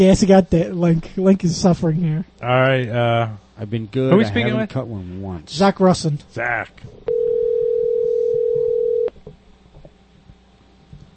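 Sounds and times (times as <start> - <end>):
speech: 0.0 - 7.2
telephone dial tone: 7.1 - 9.1.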